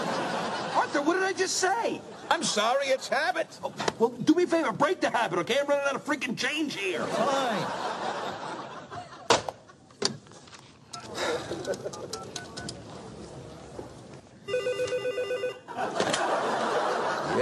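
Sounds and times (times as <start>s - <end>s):
laughter: 0.0s - 1.4s, 6.9s - 9.9s, 10.9s - 12.4s, 15.7s - 17.4s
speech: 0.9s - 7.9s, 11.6s - 12.5s
telephone ringing with a trill: 14.4s - 15.7s.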